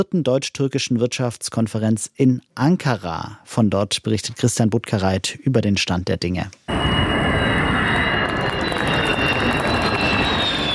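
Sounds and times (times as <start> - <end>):
speech: 0.0 - 7.8
jet roar from a Turkish-built stealth fighter with an American-made engine on its maiden flight: 6.7 - 10.7.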